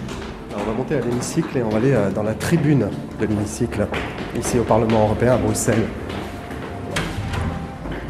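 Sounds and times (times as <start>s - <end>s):
speech: 0.5s - 6.2s
automatic door sliding open: 6.9s - 7.8s.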